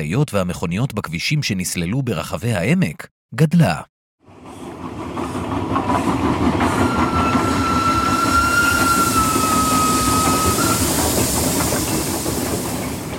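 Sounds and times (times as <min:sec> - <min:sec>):
speech: 0:00.0 - 0:04.0, 0:05.8 - 0:07.2
train rumbling on rails: 0:04.2 - 0:13.1
rhythmic clatter of train wheels: 0:04.3 - 0:13.1
thin metallic train wheel squeal: 0:06.6 - 0:13.1.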